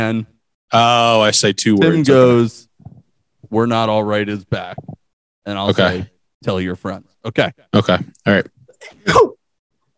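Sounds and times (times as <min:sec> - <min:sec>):
speech: 0:00.0 - 0:02.7, 0:03.5 - 0:09.3
sneeze: 0:09.0 - 0:09.4.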